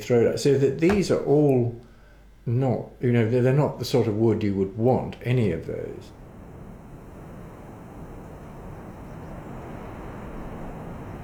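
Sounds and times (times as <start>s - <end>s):
speech: 0.0s - 6.2s
strong wind blowing outdoors: 6.1s - 11.2s.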